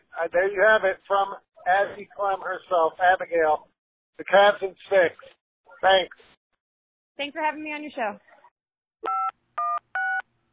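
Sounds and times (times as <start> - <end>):
speech: 0.2 - 6.3, 7.2 - 8.3
telephone keypad dual-pitched electronic tones: 9.0 - 10.2.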